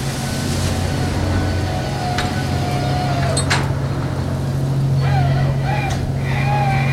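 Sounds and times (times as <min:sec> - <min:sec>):
heavy fishing boat engine drone: 0:00.0 - 0:06.9
thin whining creaking tones: 0:00.1 - 0:06.9
fishing boat winches straining hauling a net of pollock: 0:01.0 - 0:04.6.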